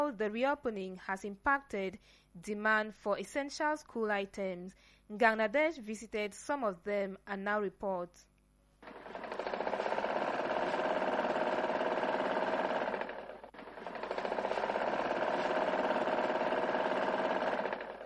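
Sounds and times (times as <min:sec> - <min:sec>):
speech: 0:00.0 - 0:09.5
sewing machine running for a repair to a school uniform: 0:08.8 - 0:18.0.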